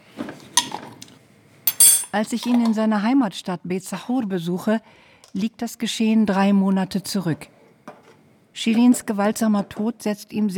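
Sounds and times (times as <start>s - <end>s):
metal utensils clinking and scraping against dishes while brewing Arabic coffee: 1.7s - 2.7s
speech: 2.1s - 7.6s, 8.6s - 10.5s.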